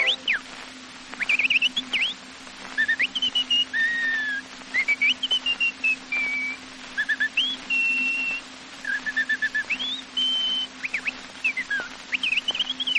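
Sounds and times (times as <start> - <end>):
person whistling an imitation of chaffinch song: 0.0 - 0.4, 1.2 - 2.2, 2.8 - 12.9.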